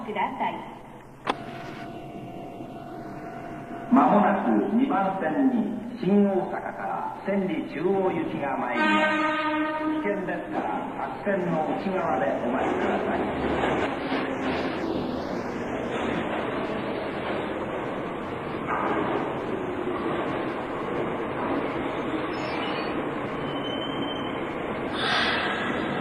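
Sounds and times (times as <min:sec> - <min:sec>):
train rolling into a station: 0:00.0 - 0:25.9
speech: 0:00.1 - 0:00.8, 0:03.9 - 0:14.6
train wheels squealing: 0:22.2 - 0:24.4.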